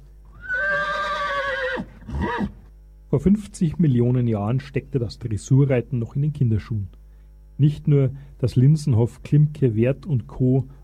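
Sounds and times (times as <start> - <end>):
horse neighing: 0.3 - 2.6
speech: 3.1 - 7.0, 7.6 - 10.8.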